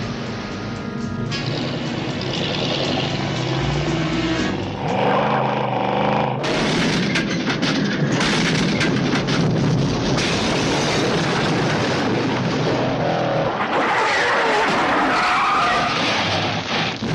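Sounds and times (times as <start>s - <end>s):
Ford Mustang Fastback engine roaring loudly: 0.0s - 17.0s
Ford Mustang Fastback tires squealing in a hard skid: 1.3s - 6.5s, 13.0s - 16.6s.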